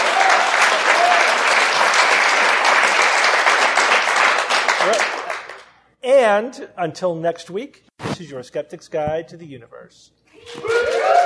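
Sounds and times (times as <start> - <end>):
live audience applause at the end of a show: 0.0 - 5.6, 10.5 - 11.2
speech: 6.3 - 11.2.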